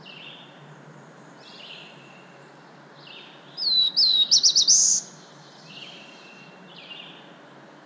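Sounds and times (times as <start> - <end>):
black-throated blue warbler Setophaga caerulescens singing: 0.0 - 0.6, 1.3 - 7.3.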